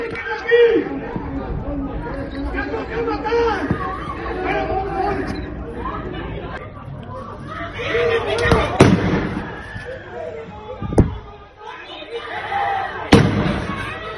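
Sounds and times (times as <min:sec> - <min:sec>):
shouting and agitated voices outdoors: 0:00.0 - 0:14.1
gunshots fired into the air: 0:08.7 - 0:09.4, 0:13.1 - 0:13.8.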